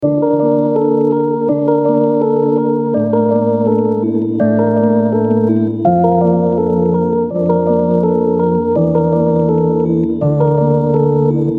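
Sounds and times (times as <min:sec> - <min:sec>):
keyboard music in D minor at 165 BPM: 0:00.0 - 0:11.5.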